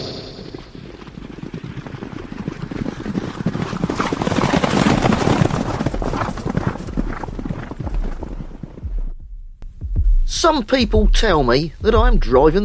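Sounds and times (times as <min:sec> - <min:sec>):
horse hooves clip-clopping and galloping: 0:00.2 - 0:09.2
speech: 0:10.4 - 0:12.6.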